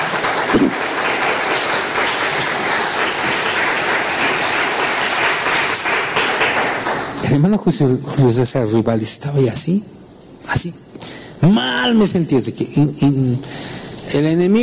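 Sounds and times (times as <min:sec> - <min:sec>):
large crowd applauding: 0:00.0 - 0:07.2
speech: 0:07.3 - 0:14.6.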